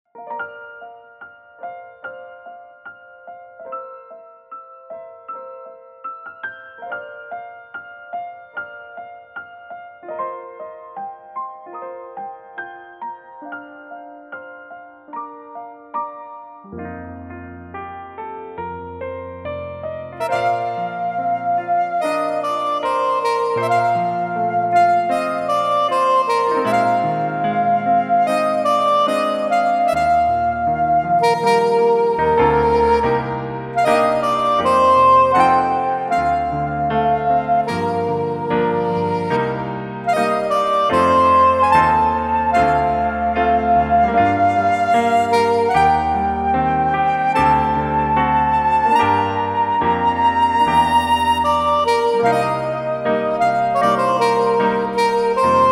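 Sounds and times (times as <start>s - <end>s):
soprano saxophone: 20.1s - 55.7s.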